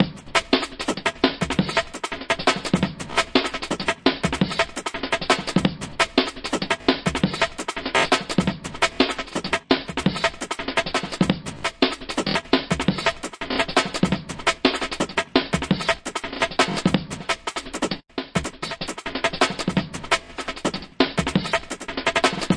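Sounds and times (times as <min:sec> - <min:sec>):
tweaky stutter roller drum loops and breaks: 0:00.0 - 0:22.5.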